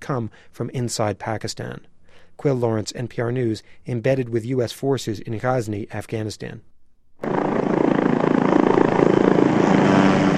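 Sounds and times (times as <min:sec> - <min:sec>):
speech: 0:00.0 - 0:07.4
military helicopters taking off during live-fire drills in South Korea: 0:07.2 - 0:10.3.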